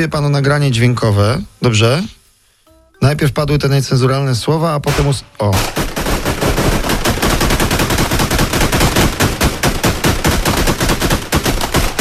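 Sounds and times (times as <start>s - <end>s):
speech: 0.0s - 2.2s, 3.0s - 6.0s
rapid gunfire: 4.9s - 11.9s.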